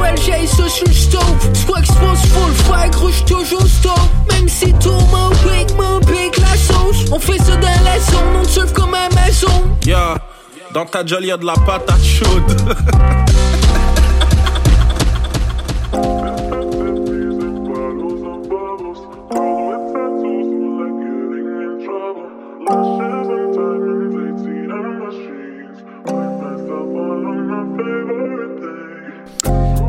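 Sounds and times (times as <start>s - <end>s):
punchy rapid hip hop beat over heavy bass: 0.0s - 10.2s, 11.6s - 19.3s
hip hop track: 0.0s - 29.8s
speech: 0.5s - 2.1s, 10.8s - 13.9s
laughter: 12.5s - 17.8s.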